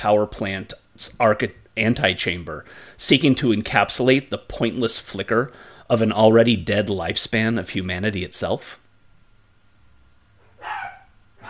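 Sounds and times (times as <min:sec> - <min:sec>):
speech: 0:00.0 - 0:08.8
dogs barking: 0:10.4 - 0:11.4.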